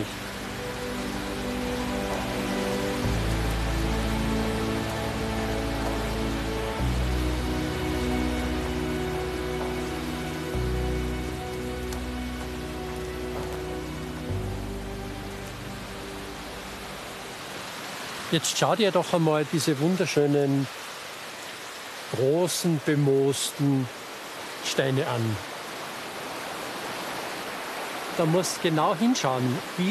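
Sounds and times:
steady rain pattering on surfaces outdoors during a hike: 0:00.0 - 0:29.8
speech: 0:18.3 - 0:20.8, 0:22.1 - 0:24.0, 0:24.6 - 0:25.5, 0:28.2 - 0:29.8.

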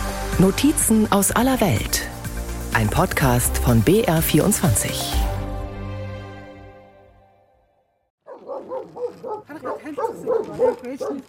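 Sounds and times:
speech: 0:00.4 - 0:02.1, 0:02.7 - 0:05.3
dog barking and yipping: 0:08.2 - 0:11.2.

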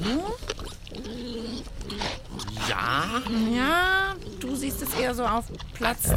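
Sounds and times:
wild boar squealing grunts and snuffles while rooting in mud: 0:00.0 - 0:06.1
speech: 0:03.2 - 0:03.8, 0:04.7 - 0:06.1.

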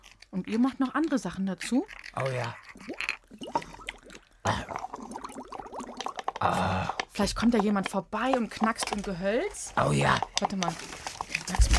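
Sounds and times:
speech: 0:00.3 - 0:03.6, 0:06.4 - 0:11.0
water bubbling softly: 0:02.5 - 0:06.5.

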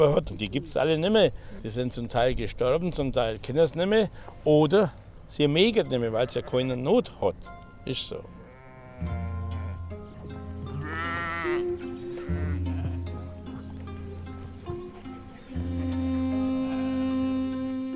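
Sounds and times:
speech: 0:00.0 - 0:08.4, 0:09.0 - 0:09.3
flock of sheep bleating: 0:08.5 - 0:09.9, 0:10.8 - 0:13.3, 0:15.9 - 0:17.9.

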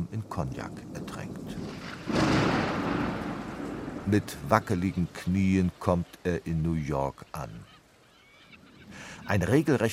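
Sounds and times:
rolling thunder from a thunderstorm: 0:00.0 - 0:05.3
speech: 0:00.2 - 0:02.4, 0:04.1 - 0:07.7, 0:09.3 - 0:09.9.

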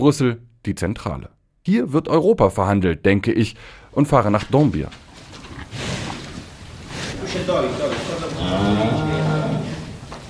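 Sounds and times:
speech: 0:00.0 - 0:05.0, 0:07.3 - 0:09.0
faint voices murmuring: 0:07.0 - 0:10.1
cows mooing outside a stable on a farm in Dąbier: 0:07.5 - 0:10.1.

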